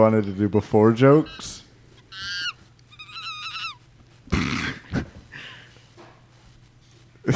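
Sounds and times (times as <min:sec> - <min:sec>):
speech: 0:00.0 - 0:01.6
monkeys calling loudly: 0:01.0 - 0:05.1.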